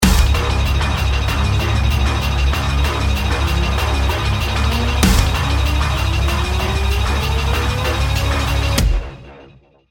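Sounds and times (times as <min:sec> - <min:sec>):
bomb countdown: 0:00.0 - 0:09.3
music: 0:00.0 - 0:09.8.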